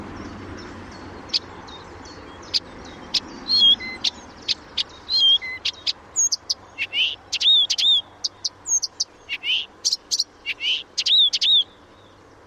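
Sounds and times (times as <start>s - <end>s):
Blyth's reed warbler singing: 2.4s - 11.8s.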